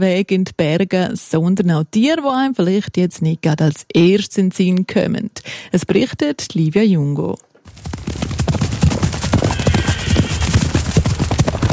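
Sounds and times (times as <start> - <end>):
speech: 0.0 - 8.3
horses galloping across a mountain pasture in the Safiental valley: 7.7 - 11.7
horses neighing on a mountain pasture: 9.0 - 11.0.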